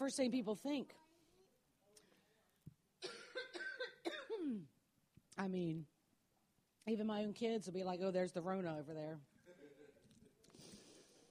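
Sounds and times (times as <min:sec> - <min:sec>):
speech: 0:00.0 - 0:01.0, 0:05.4 - 0:05.9, 0:06.8 - 0:09.3
harsh raspy coughing from pollen allergy: 0:03.0 - 0:04.6.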